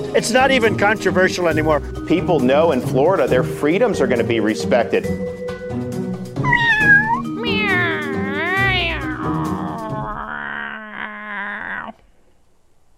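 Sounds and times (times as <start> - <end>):
speech: 0.2 - 5.4
person imitating a yowling cat: 6.4 - 12.0.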